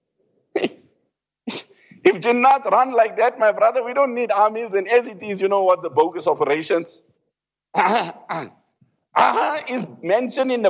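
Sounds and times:
man clearing throat: 0.5s - 0.9s, 7.7s - 9.7s
speech: 2.1s - 7.1s, 7.7s - 8.6s, 9.2s - 10.6s.

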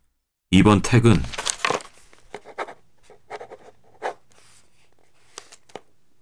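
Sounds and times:
speech: 0.5s - 1.4s
ballpoint pen writing on a large sheet of paper fixed to a wall: 2.3s - 4.2s.

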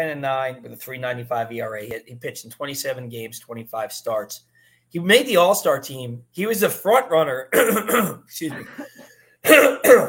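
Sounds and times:
speech: 0.0s - 10.0s
person clearing throat: 7.5s - 10.0s.

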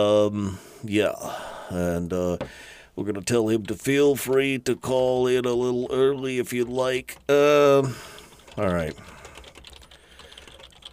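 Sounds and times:
speech: 0.0s - 9.2s
computer keyboard typing: 7.0s - 10.9s.

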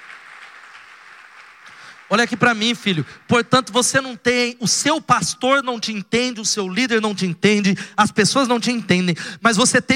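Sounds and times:
large crowd applauding: 0.0s - 3.4s
speech: 2.1s - 9.9s.

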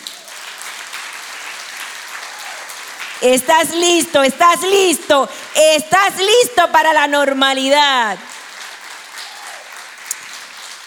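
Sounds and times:
audience applauding: 0.0s - 10.8s
speech: 3.2s - 8.3s.

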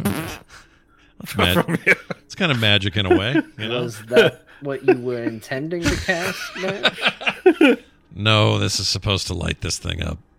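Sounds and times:
small buzzy fart noise: 0.0s - 0.5s
laughter: 1.2s - 7.9s
speech: 1.3s - 10.3s.

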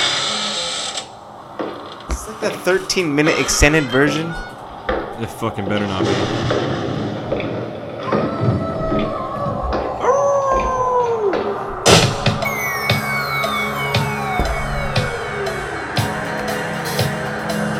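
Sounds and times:
steady noisy background: 0.0s - 17.7s
speech: 2.3s - 4.5s, 5.2s - 6.9s
hungry dog howling and whining: 8.0s - 16.6s.

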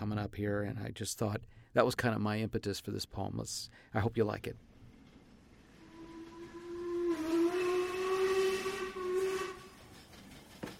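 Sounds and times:
speech: 0.1s - 4.7s
freight train whistle: 5.7s - 10.0s.

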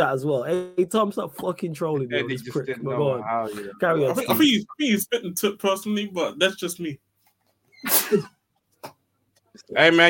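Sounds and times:
speech: 0.0s - 7.0s, 7.8s - 9.0s, 9.6s - 10.0s
person sneezing: 7.8s - 8.3s.

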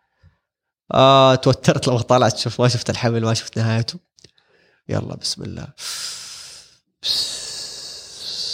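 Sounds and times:
speech: 0.9s - 4.3s, 4.9s - 6.1s, 7.0s - 7.2s
deep breathing before a breath-hold dive: 5.8s - 8.5s.

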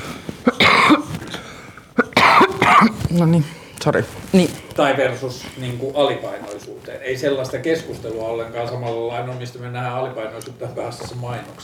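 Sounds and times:
person coughing: 0.4s - 1.1s, 2.0s - 3.0s
speech: 3.1s - 11.6s.

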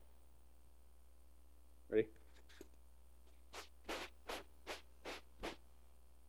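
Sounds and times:
speech: 1.9s - 2.7s
sandpaper rubbing back and forth: 3.5s - 5.6s.

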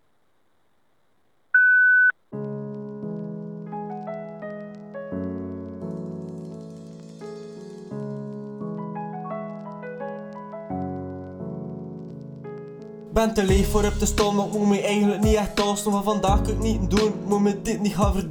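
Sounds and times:
high electronic voicemail beep tone: 1.6s - 2.1s
mellow instrumental music with sustained chords: 2.3s - 18.2s
speech: 13.2s - 18.2s.

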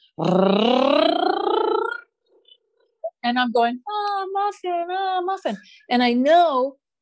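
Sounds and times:
speech: 0.2s - 1.2s, 3.3s - 6.8s
person vocally imitating a high-speed camera's motorboat-like whir: 0.2s - 2.1s.

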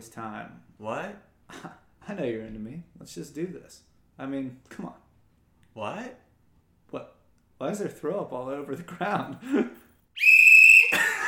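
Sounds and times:
speech: 0.0s - 5.0s, 5.8s - 6.2s, 6.9s - 11.1s
personal safety whistle blown: 10.2s - 11.0s.

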